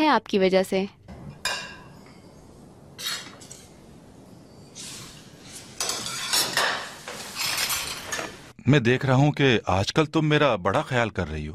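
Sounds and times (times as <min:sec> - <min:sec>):
speech: 0:00.1 - 0:01.0, 0:08.7 - 0:11.5
plates and dishes clinking while rice is served: 0:01.1 - 0:02.3, 0:03.0 - 0:03.8, 0:04.8 - 0:08.5.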